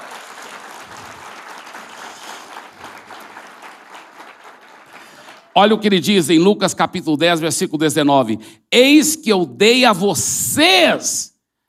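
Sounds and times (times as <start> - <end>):
audience applauding: 0.0 - 5.9
speech: 5.6 - 11.3.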